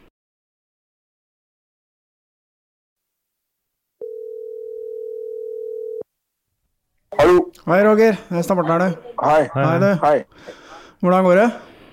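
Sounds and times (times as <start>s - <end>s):
telephone dial tone while a call is being placed: 4.0s - 6.0s
speech: 7.2s - 11.7s.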